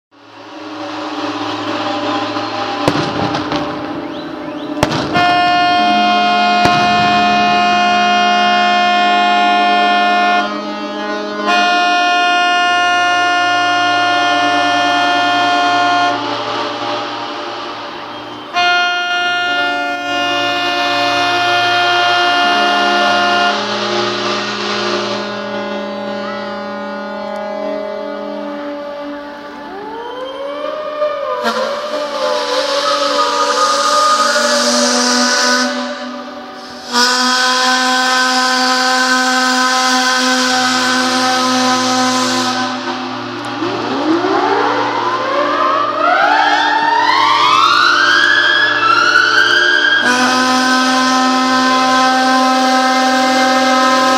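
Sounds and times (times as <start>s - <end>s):
steamship sirens: 0.1s - 54.1s.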